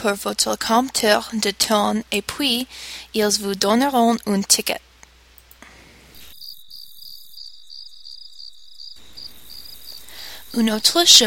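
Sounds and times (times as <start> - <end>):
speech: 0.0 - 4.9, 10.6 - 11.2
crickets chirping at night: 6.1 - 11.2.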